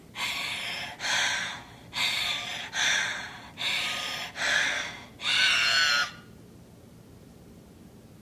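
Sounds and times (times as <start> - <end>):
heavy gasping rasping breaths: 0.2 - 5.4.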